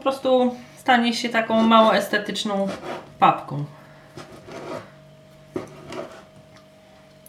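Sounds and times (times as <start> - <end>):
speech: 0.0 - 3.8
knife scraping on wooden cutting board: 1.5 - 3.1, 4.1 - 5.0, 5.6 - 6.4.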